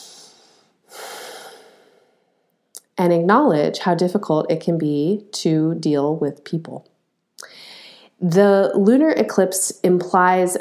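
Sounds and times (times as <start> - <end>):
person taking a deep breath in and out: 0.0 - 2.4, 7.4 - 8.2
speech: 3.0 - 6.9, 8.2 - 10.5.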